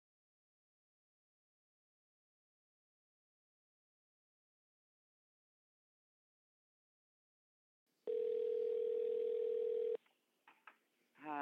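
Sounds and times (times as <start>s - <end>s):
electronic phone line ring tone while placing a call: 8.1s - 10.0s.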